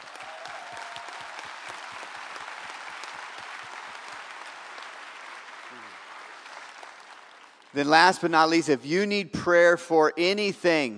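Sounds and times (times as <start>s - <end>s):
audience applauding: 0.0s - 8.3s
speech: 7.7s - 10.9s.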